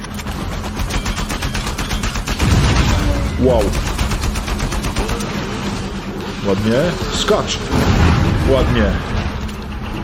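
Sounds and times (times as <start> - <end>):
rapid automatic gunfire in a video game: 0.1 - 5.7
speech: 3.4 - 3.9, 6.4 - 9.1.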